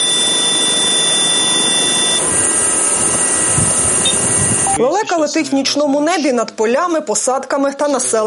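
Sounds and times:
small reconnaissance drone motor whining at takeoff: 0:00.0 - 0:04.8
speech: 0:04.8 - 0:08.2.

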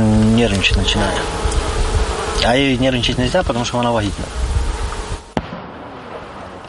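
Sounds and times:
rumbling outdoor din: 0:00.0 - 0:06.6
speech: 0:00.4 - 0:01.5, 0:02.4 - 0:04.5
artillery blast from a cannonade at combat positions: 0:05.3 - 0:06.6.

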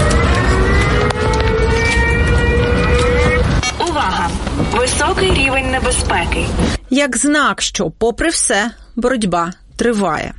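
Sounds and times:
wailing air raid siren: 0:00.0 - 0:04.2
dense rumble of noise: 0:00.0 - 0:08.3
speech: 0:05.8 - 0:10.3.

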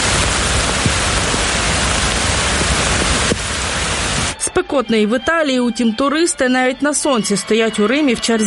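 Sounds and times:
heavy rain falling in Berlin during a summer thunderstorm: 0:00.0 - 0:04.4
speech: 0:04.6 - 0:08.4.

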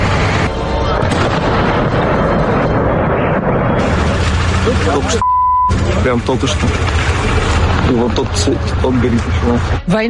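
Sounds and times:
explosions from air attacks: 0:00.0 - 0:09.8
speech: 0:04.9 - 0:05.3, 0:06.0 - 0:10.0
steady high-pitched beep tone: 0:05.2 - 0:05.8.

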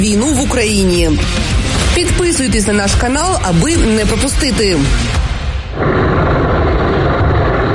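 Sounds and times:
speech: 0:00.0 - 0:05.2
heavy explosions over a city: 0:01.7 - 0:07.7.

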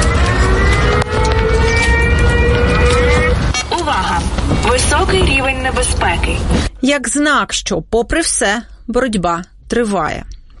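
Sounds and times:
air raid siren wailing: 0:00.0 - 0:06.5
low rumble: 0:00.0 - 0:10.5
speech: 0:05.8 - 0:10.5.

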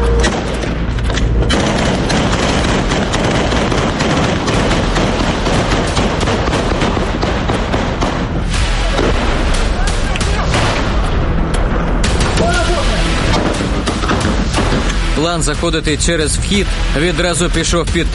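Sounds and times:
heavy booming explosions in combat: 0:00.1 - 0:15.2
rapid gunfire in combat against an armored assault column: 0:01.4 - 0:10.9, 0:12.0 - 0:14.9
speech: 0:15.3 - 0:18.1.

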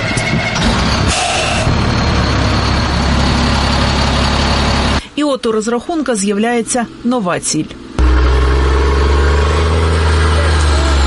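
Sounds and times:
new military truck heavy diesel engine idling: 0:00.0 - 0:05.2, 0:07.8 - 0:11.0
speech: 0:05.4 - 0:07.8.

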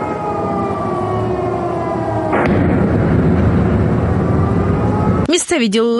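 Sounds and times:
wailing siren: 0:00.0 - 0:05.3
heavy blast from drone strike: 0:02.0 - 0:05.3
speech: 0:05.5 - 0:05.9.

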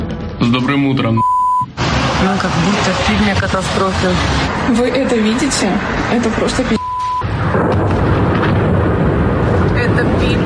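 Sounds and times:
speech: 0:00.4 - 0:01.3, 0:02.2 - 0:06.8
explosions booming as factories burn: 0:06.8 - 0:10.4.

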